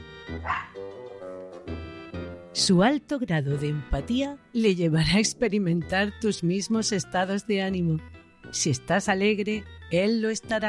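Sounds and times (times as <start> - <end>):
dog barking deep and loud: 0.4 - 0.9
speech: 0.4 - 1.0, 2.6 - 10.6.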